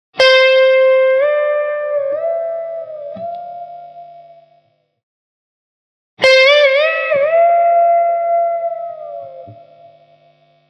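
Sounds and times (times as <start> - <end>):
guitar two half tone bend: 0.2 - 4.6, 6.2 - 10.1.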